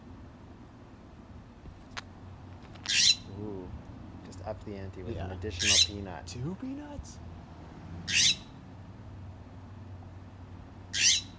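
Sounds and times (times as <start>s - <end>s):
quiet low hum: 0.0s - 11.3s
scrub jay squawking: 2.8s - 3.4s, 5.1s - 6.1s, 8.1s - 8.6s, 10.9s - 11.3s
speech: 4.5s - 7.3s, 8.1s - 8.3s.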